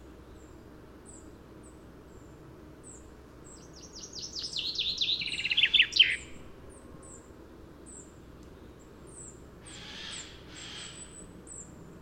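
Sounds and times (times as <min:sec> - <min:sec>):
common chaffinch Fringilla coelebs singing: 0:00.2 - 0:11.8
thin high chirps from another bird: 0:03.9 - 0:06.2.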